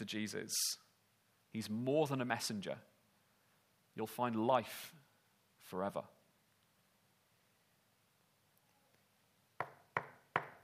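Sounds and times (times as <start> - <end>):
speech: 0.0 - 0.8, 1.5 - 2.9, 4.0 - 6.2
firm knocks on a wooden door: 9.6 - 10.6.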